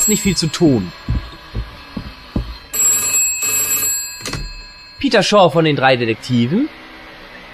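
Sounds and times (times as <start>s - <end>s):
dull low thumps: 0.0s - 2.8s
telephone ringing: 0.0s - 5.6s
speech: 0.1s - 1.1s, 5.1s - 6.8s.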